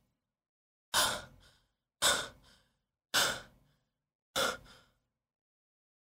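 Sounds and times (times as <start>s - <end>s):
heavy panting breaths after waking suddenly: 0.9s - 5.1s.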